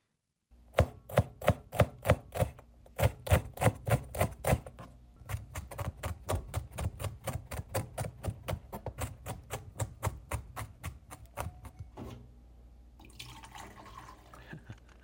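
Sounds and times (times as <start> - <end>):
knife chopping vegetables on a cutting board: 0.7 - 11.9.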